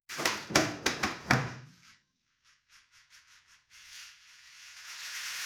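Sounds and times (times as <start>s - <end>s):
plastic door squealing: 0.2s - 1.6s.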